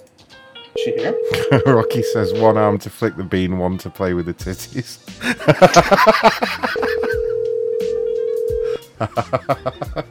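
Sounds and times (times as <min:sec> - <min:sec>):
telephone ringing with incoming call: 0:00.8 - 0:02.6, 0:06.8 - 0:08.8
speech: 0:00.8 - 0:06.9, 0:09.0 - 0:10.0
laughter: 0:01.3 - 0:02.0, 0:05.2 - 0:07.4, 0:09.0 - 0:10.0.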